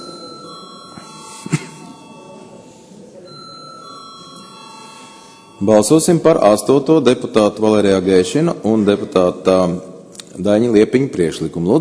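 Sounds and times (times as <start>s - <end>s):
electric bell ringing in a parliament chamber to call a vote: 0.0s - 6.8s
faint room murmur: 0.0s - 11.8s
speech: 5.6s - 11.8s.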